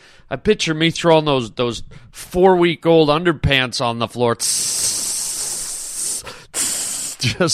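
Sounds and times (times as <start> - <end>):
speech: 0.3 - 5.1, 7.2 - 7.5
voice imitating acid sizzling through wood: 4.4 - 7.4
laughter: 7.2 - 7.5.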